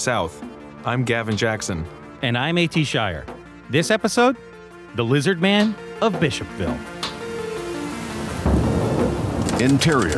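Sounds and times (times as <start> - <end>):
speech: 0.0 - 6.9, 9.6 - 10.1
steady rain: 7.4 - 10.1
deep loud rumble of thunder: 8.1 - 10.1.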